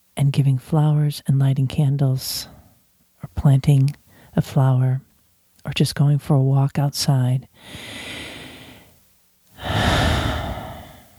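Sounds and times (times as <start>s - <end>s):
speech: 0.2s - 2.6s, 3.3s - 8.0s
slow deep breathing: 7.6s - 9.0s, 9.6s - 11.1s.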